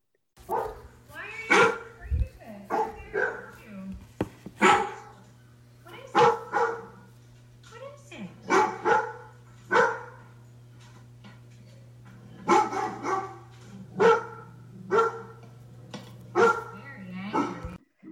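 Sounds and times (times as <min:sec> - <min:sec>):
Labrador retriever barking deeply: 0:00.5 - 0:00.8, 0:01.5 - 0:02.0, 0:02.7 - 0:03.6, 0:04.6 - 0:05.3, 0:06.1 - 0:07.1, 0:08.4 - 0:10.3, 0:12.4 - 0:17.8.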